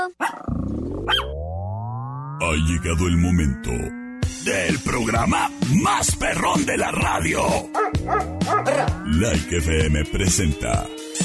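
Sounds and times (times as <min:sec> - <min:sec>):
dog barking: 0:00.1 - 0:00.5, 0:01.1 - 0:01.3, 0:07.8 - 0:09.0
speech: 0:02.5 - 0:11.2
dog growling: 0:07.6 - 0:09.1.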